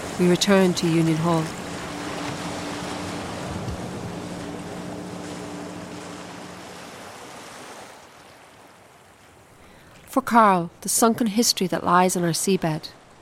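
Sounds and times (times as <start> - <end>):
wind buffeting in rough weather: 0.0 - 7.8
low boat engine hum: 0.0 - 8.1
strong waves churning around a boat in rough weather: 0.0 - 13.2
speech: 0.2 - 1.6, 10.2 - 13.0.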